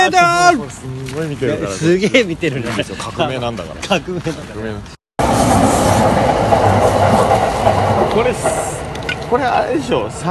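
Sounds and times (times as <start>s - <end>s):
speech: 0.1s - 6.6s, 8.2s - 10.2s
commuter train rumbling past: 5.2s - 10.2s.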